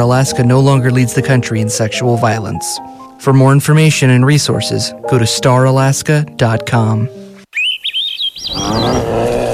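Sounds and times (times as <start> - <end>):
speech: 0.0 - 7.2, 8.5 - 9.4
juncos and chickadees chirping at a bird feeder: 7.5 - 9.0.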